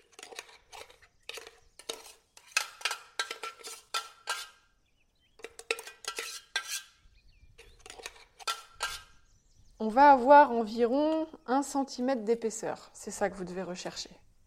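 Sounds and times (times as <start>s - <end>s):
utensil tapping and scraping while pressing crushed biscuit and butter onto baking paper: 0.0s - 4.6s, 5.3s - 7.0s, 7.6s - 9.2s
speech: 9.8s - 14.2s.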